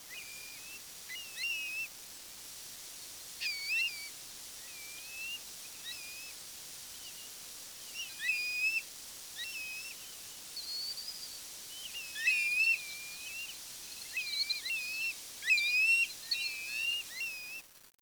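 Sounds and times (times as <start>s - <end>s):
faint background hiss: 0.0s - 17.9s
birds chirping: 9.4s - 17.6s.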